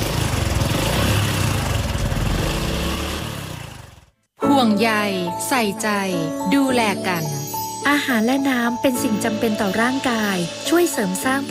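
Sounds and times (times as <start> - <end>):
motorcycle engine running: 0.0 - 4.2
speech: 4.6 - 11.4.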